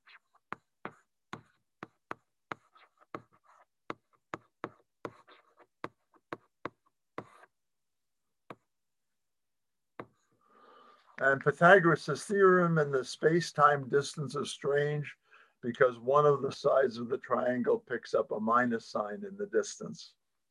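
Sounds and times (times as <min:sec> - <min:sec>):
taps and scratches of writing out an equation: 0:00.0 - 0:07.6, 0:08.4 - 0:08.7, 0:10.0 - 0:10.2
speech: 0:11.2 - 0:20.2.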